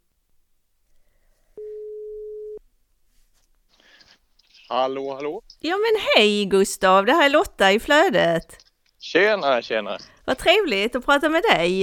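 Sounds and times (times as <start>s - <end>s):
faint noise: 0.0s - 11.8s
telephone ringback tone while calling: 1.6s - 2.6s
speech: 4.7s - 11.8s.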